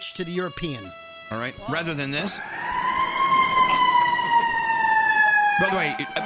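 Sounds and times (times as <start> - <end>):
speech: 0.0 - 3.8, 5.6 - 6.2
emergency truck siren wailing: 1.5 - 6.2.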